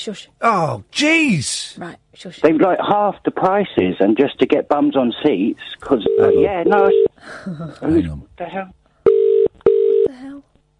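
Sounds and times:
speech: 0.0 - 9.2
telephone ringing during a live radio show: 6.0 - 7.1, 9.1 - 10.1.

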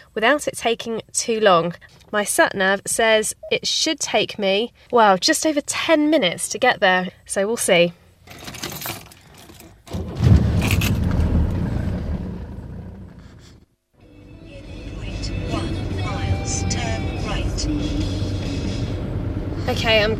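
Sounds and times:
speech: 0.2 - 8.5, 19.8 - 20.1
car driving into a town with oncoming traffic: 8.3 - 20.1.

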